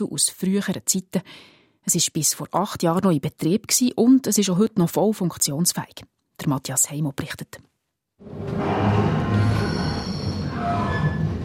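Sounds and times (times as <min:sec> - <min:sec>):
speech: 0:00.0 - 0:09.2
train pulling into a railway station: 0:08.2 - 0:11.4
thin metallic train wheel squeals: 0:08.4 - 0:11.4.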